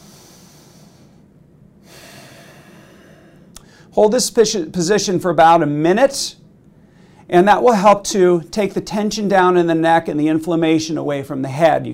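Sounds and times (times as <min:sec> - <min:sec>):
slow deep breaths while standing against a wall: 0:00.0 - 0:04.0, 0:06.7 - 0:07.3
speech: 0:04.0 - 0:06.4, 0:07.3 - 0:11.9.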